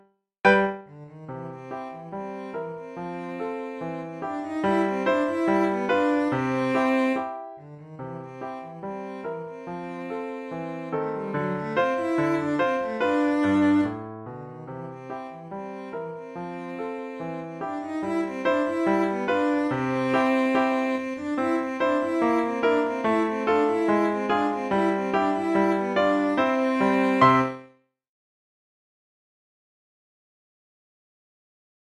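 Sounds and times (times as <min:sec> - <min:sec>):
cello piece: 0:00.5 - 0:27.7.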